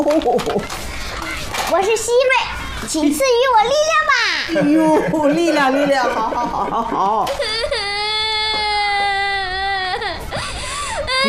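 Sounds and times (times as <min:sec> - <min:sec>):
speech: 0:00.0 - 0:00.9, 0:01.7 - 0:07.8
laughter: 0:04.5 - 0:07.2
young child crying and sobbing: 0:07.2 - 0:11.2.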